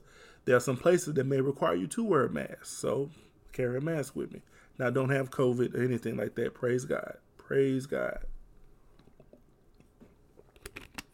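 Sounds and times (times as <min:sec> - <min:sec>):
speech: 0:00.5 - 0:08.3
person drinking water with squishy swallows: 0:09.0 - 0:10.6.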